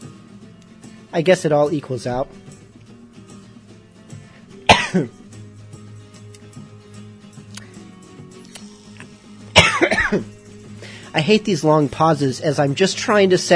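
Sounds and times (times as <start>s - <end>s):
speech: 1.1s - 2.4s, 4.9s - 5.2s, 10.1s - 10.3s, 11.1s - 13.5s
person coughing: 4.6s - 5.2s, 9.5s - 10.3s
throat clearing rasp: 4.7s - 5.2s, 8.6s - 10.3s.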